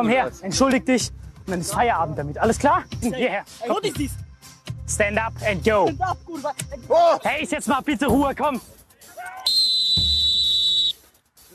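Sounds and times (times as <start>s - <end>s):
speech: 0.0s - 4.2s, 4.9s - 9.5s
referee-style whistle blast at a sports training session: 9.2s - 11.0s.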